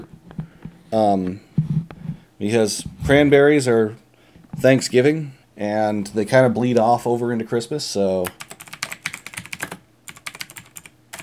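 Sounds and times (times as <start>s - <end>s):
speech: 0.9s - 1.5s, 2.4s - 4.0s, 4.6s - 8.4s
clacky typing on a computer keyboard: 8.3s - 11.2s.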